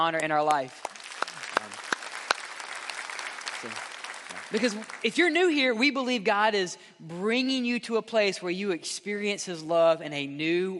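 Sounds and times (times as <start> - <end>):
speech: 0.0 - 0.9, 3.6 - 3.9, 4.5 - 10.7
audience applause given to God: 0.7 - 5.4.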